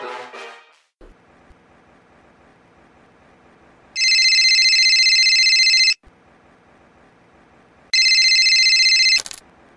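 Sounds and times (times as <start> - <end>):
faint low hum: 1.0 - 9.7
telephone ringing with bright buzzing tone: 4.0 - 6.0, 8.0 - 9.4.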